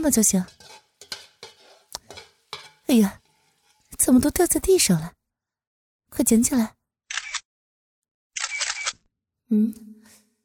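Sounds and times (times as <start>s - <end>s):
speech: 0.0s - 0.8s, 2.9s - 3.2s, 4.0s - 5.2s, 6.1s - 6.8s, 9.5s - 10.0s
mobile phone camera shutter sound taking a photo: 7.1s - 7.5s, 8.4s - 9.0s.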